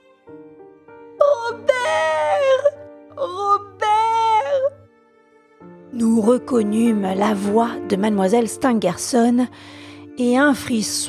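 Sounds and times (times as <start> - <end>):
woman wailing in anguish: 1.2 - 4.8
speech: 6.2 - 11.0.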